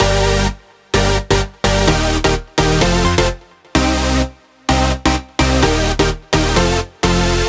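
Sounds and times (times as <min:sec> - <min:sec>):
128 BPM synthesizer: 0:00.0 - 0:07.4.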